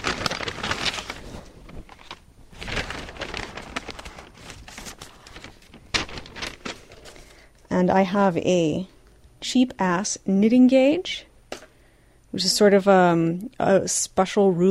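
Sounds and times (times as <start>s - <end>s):
paper bag being opened, crinkling and rustling: 0.0s - 7.8s
speech: 7.8s - 11.3s, 12.3s - 14.6s.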